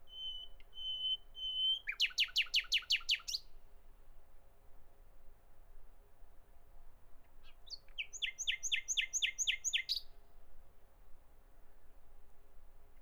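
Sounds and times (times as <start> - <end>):
common nightingale song: 0.0 - 3.5, 7.4 - 10.1.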